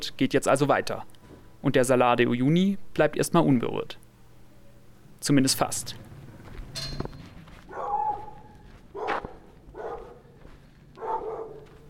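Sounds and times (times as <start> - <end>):
speech: 0.0 - 4.0, 5.2 - 6.0
faint open-air background: 0.0 - 11.8
several dogs barking in a quiet street: 7.6 - 11.8.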